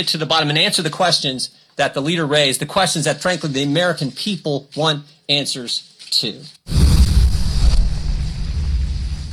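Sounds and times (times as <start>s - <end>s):
speech: 0.0s - 6.8s
explosion sound effect: 6.7s - 9.3s.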